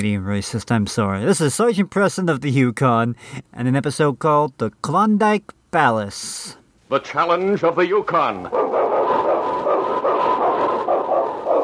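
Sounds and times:
speech: 0.0s - 8.9s
pack of husky sled dogs barking and yipping: 8.5s - 11.6s.

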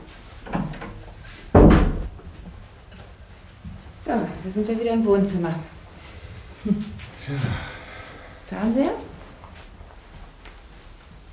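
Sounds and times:
bathroom door thud shut in a flat: 1.5s - 2.2s
speech: 4.1s - 5.7s, 6.6s - 7.7s, 8.5s - 9.0s.

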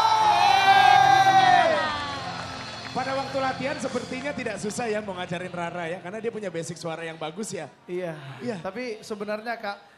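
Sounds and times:
audience cheering for a singer's performance with shouts and whoops: 0.0s - 3.6s
speech: 3.3s - 9.9s.

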